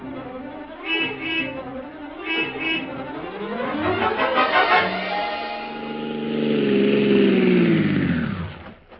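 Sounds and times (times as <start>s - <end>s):
taxi engine starting and revving: 1.8s - 8.8s.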